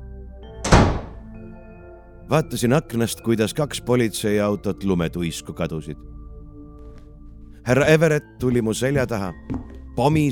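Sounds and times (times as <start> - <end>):
house door slammed shut by someone leaving: 0.6 - 1.2
speech: 2.3 - 6.2, 7.7 - 10.3.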